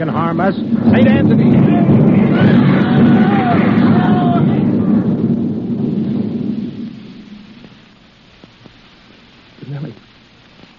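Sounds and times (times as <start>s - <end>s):
speech: 0.0s - 2.0s
heavy 305 artillery shell exploding: 0.0s - 8.4s.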